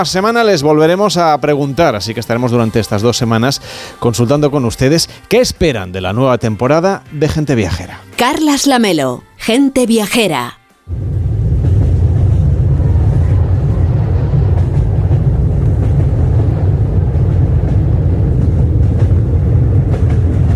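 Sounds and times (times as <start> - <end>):
speech: 0.0 - 11.1
train travelling on rails: 10.9 - 20.5.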